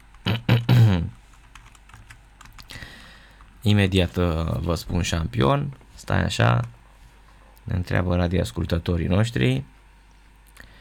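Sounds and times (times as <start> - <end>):
typing on a computer keyboard: 1.3 - 2.7
speech: 3.6 - 6.8, 7.7 - 9.7.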